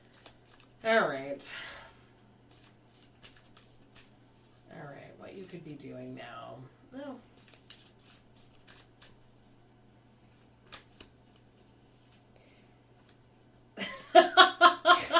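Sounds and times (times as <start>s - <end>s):
tarot cards shuffling: 0.0s - 1.4s, 2.4s - 4.6s, 7.3s - 9.2s, 10.6s - 12.2s
speech: 0.8s - 1.8s, 5.4s - 7.3s
laughter-like voice sounds: 13.8s - 15.1s.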